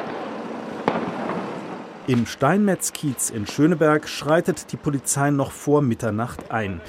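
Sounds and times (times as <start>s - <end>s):
sharp firework bang in the street: 0.0s - 2.2s
dense crackling firework explosions: 0.0s - 6.8s
street noise: 0.0s - 6.8s
speech: 2.1s - 6.8s.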